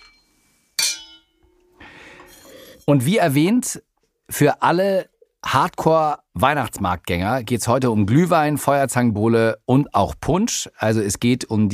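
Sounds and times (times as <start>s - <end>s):
glasses clinking in a toast: 0.0s - 1.6s
speech: 2.9s - 11.7s.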